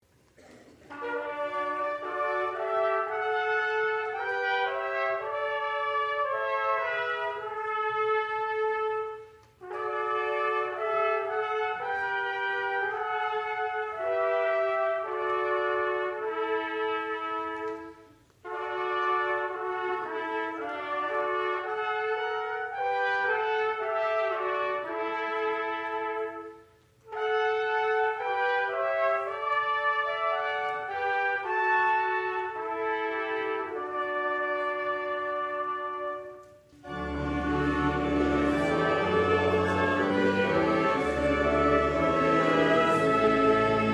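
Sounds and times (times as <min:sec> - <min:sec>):
trumpets: 0:00.4 - 0:43.9.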